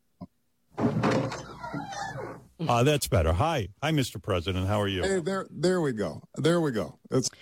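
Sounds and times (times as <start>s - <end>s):
door swinging open with noise flooding in: 0.8s - 2.4s
speech: 2.6s - 7.4s.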